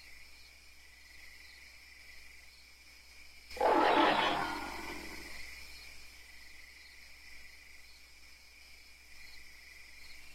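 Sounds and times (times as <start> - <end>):
ape giving a harsh raspy scream: 3.6 - 5.4.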